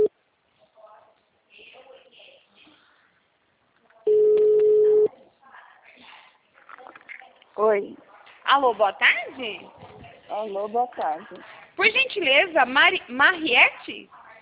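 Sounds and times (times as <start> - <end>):
telephone ringing on a call: 4.1 - 5.1
speech: 7.6 - 14.2.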